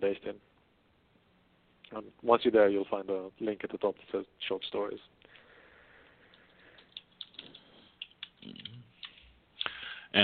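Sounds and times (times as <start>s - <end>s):
speech: 2.0s - 5.2s
rapid irregular key clicks from a computer keyboard being typed on: 6.3s - 9.2s.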